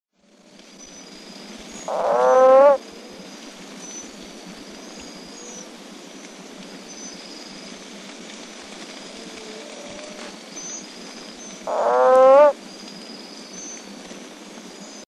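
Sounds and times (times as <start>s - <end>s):
Rhombophryne testudo calling: 1.8s - 2.9s, 11.5s - 12.6s.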